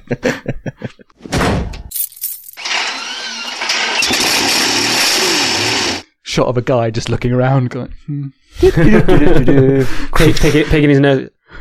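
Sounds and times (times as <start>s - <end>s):
laughter: 0.0s - 1.2s, 8.6s - 10.8s
speech: 0.1s - 0.6s, 6.4s - 11.5s
car engine catching and revving with a steady roar: 2.6s - 6.0s
car starter cranking: 2.6s - 6.0s.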